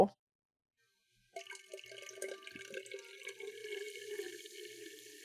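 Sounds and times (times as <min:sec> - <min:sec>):
fizzy carbonated drink poured from a can into a glass mason jar: 0:01.3 - 0:05.2.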